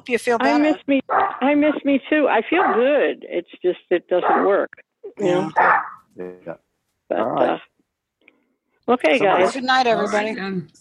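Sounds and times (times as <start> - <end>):
speech: 0.0 - 7.7, 8.9 - 10.7
dog barking: 1.1 - 1.4, 2.5 - 3.0, 4.2 - 4.7, 5.5 - 6.0, 9.2 - 10.3.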